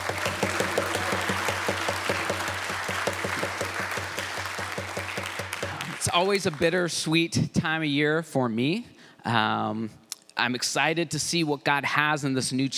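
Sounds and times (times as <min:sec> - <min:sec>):
crowd at a church applauding: 0:00.0 - 0:06.9
speech: 0:06.0 - 0:12.7.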